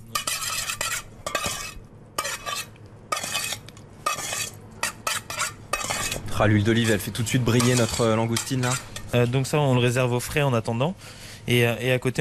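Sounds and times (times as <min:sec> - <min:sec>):
utensils scraping and clinking while mixing langoustine with pepper and salt: 0:00.0 - 0:09.2
speech: 0:06.4 - 0:12.1.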